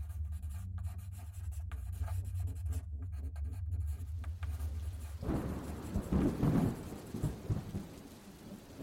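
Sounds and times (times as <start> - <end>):
pen nib scratching across a blank page: 0.0 - 6.2
rain: 4.4 - 8.8
low rumble of thunder: 4.6 - 8.8.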